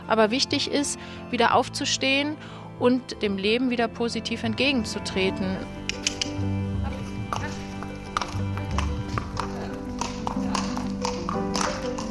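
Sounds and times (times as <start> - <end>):
speech: 0.1 - 6.5
ambient hum: 4.5 - 11.0
horse hooves clip-clopping on the hard surface of a riding stable courtyard near Cologne: 5.0 - 12.0.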